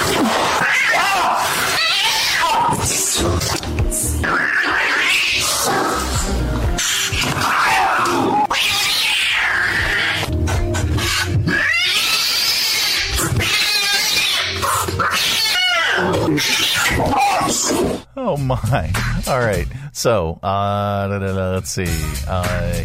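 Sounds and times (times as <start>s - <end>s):
angry cat yowling and growling while being bathed: 0.0s - 3.6s, 4.2s - 6.2s, 6.8s - 10.3s, 10.9s - 18.0s
speech: 18.5s - 22.8s.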